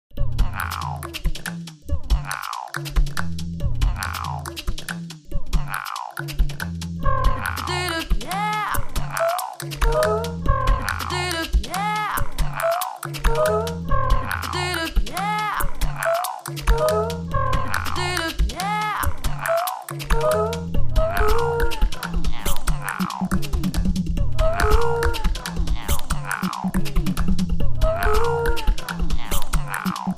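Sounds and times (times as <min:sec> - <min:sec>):
vocal sequence: 0:00.1 - 0:30.1.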